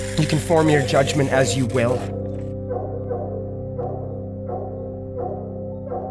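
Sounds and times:
speech: 0.2 - 2.2
dog barking: 2.7 - 6.0.

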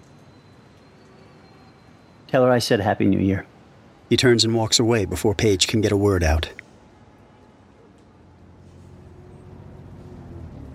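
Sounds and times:
speech: 2.3 - 3.5, 4.1 - 6.6
Greyhound bus engine droning at low pitch: 3.8 - 10.7.

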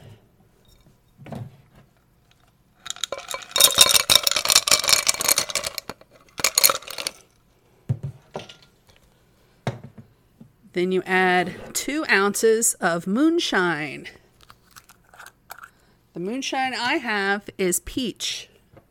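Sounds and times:
ice cubes clattering into a glass: 2.8 - 7.2
speech: 10.8 - 14.2, 16.2 - 18.5.

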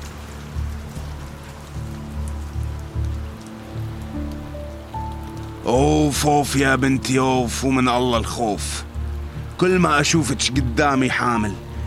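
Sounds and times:
rain pattering on a surface: 0.0 - 11.8
speech: 5.7 - 8.9, 9.6 - 11.7.

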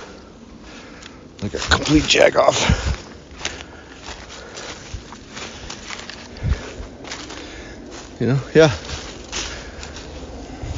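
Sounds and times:
heavy footsteps crunching and thudding through dry brush on a hilltop off a hiking trail: 0.0 - 10.7
speech: 1.4 - 3.0, 8.2 - 8.9.

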